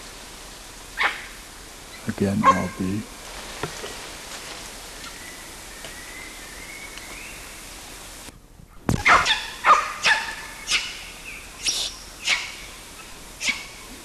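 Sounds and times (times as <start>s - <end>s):
lone monkey giving loud sharp barking calls: 1.0s - 3.0s, 9.0s - 14.0s
speech: 2.0s - 3.8s
faint rustling: 2.0s - 6.1s.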